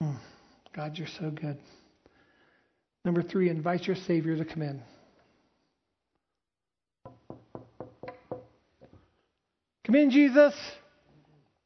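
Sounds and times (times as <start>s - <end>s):
speech: 0.8s - 1.8s, 3.0s - 5.0s, 9.9s - 10.8s
loud knocks on a solid surface: 7.0s - 8.9s.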